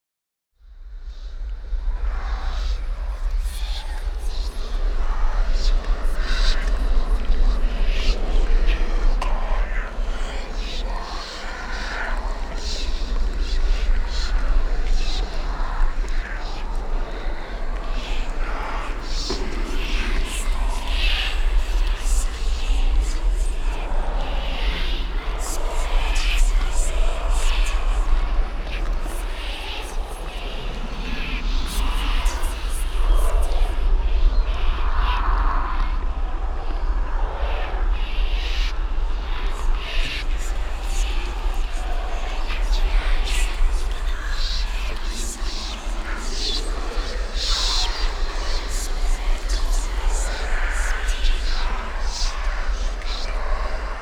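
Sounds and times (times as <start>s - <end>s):
whispering wraiths: 1.0s - 54.0s.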